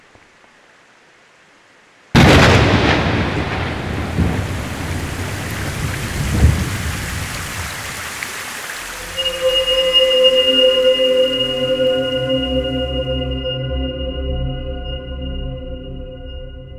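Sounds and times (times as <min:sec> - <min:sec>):
heavy rain pouring: 0:02.2 - 0:13.1
sustained tonal drones: 0:09.1 - 0:16.7.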